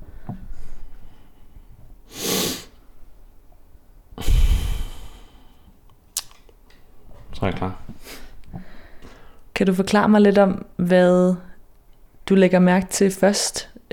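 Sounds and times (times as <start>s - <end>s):
long heavy exhale: 2.1s - 2.8s, 4.2s - 5.6s
deep breath in: 4.2s - 5.7s, 8.2s - 9.4s
speech: 7.4s - 8.3s, 9.6s - 11.5s, 12.3s - 13.9s.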